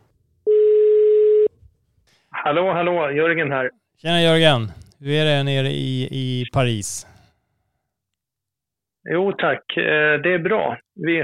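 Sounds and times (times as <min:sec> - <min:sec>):
telephone ringing tone while a call is placed: 0:00.5 - 0:01.5
speech: 0:02.4 - 0:07.1, 0:09.0 - 0:11.2.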